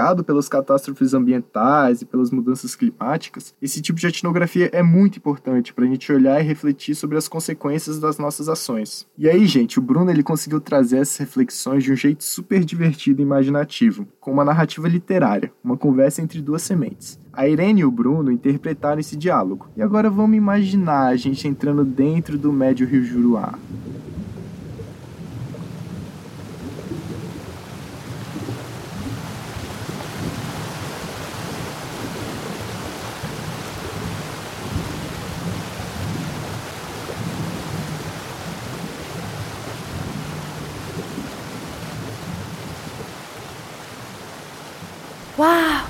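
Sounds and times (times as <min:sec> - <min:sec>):
speech: 0:00.0 - 0:24.1
heavy rainstorm downpour: 0:16.4 - 0:45.8
deep thunder rumbling: 0:21.1 - 0:44.1.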